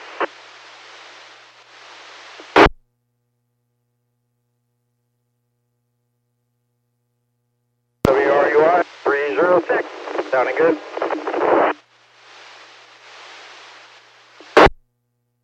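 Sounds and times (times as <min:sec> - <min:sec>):
two-way radio static hiss: 0:00.0 - 0:02.8, 0:08.1 - 0:14.8
brief talk over a two-way radio channel: 0:08.1 - 0:11.8.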